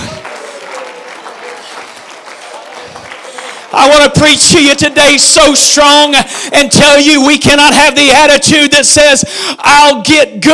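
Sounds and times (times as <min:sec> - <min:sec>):
audience applause: 0:00.0 - 0:06.7
speech: 0:03.8 - 0:10.5.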